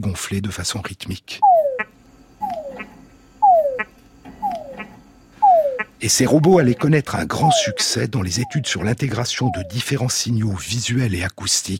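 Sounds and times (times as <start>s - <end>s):
speech: 0.0s - 1.6s, 6.0s - 11.7s
faint background of other night sounds: 0.0s - 11.7s
male túngara frog mating call: 1.4s - 10.1s.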